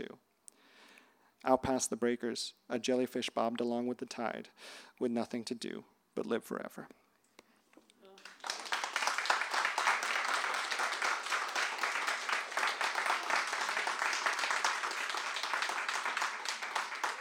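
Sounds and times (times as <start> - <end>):
speech: 1.4 - 7.0
audience applauding after a reading: 8.2 - 17.1.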